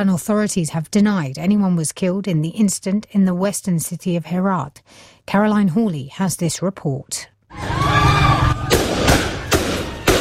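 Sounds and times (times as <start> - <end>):
speech: 0.0 - 7.7
protest crowd noise and shouting: 7.5 - 10.1
live gunfire used to break up a protest: 8.6 - 10.1.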